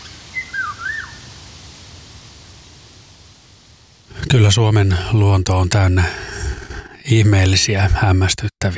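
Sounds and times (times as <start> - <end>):
Eurasian golden oriole fluting melodious whistle song: 0.0 - 1.3
speech: 4.3 - 6.4, 7.1 - 8.7.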